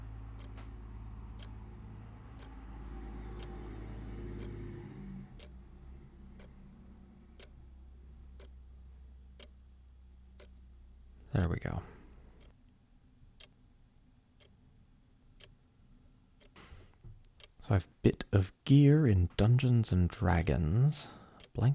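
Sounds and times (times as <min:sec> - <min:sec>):
truck slowly driving past outside window: 0:00.0 - 0:08.3
clock ticking in the room: 0:00.0 - 0:13.7, 0:14.4 - 0:14.7, 0:15.4 - 0:15.7, 0:16.4 - 0:21.7
speech: 0:11.3 - 0:12.0, 0:17.7 - 0:21.7.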